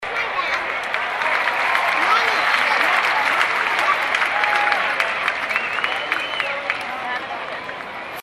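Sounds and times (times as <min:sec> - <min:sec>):
light applause: 0:00.0 - 0:08.2.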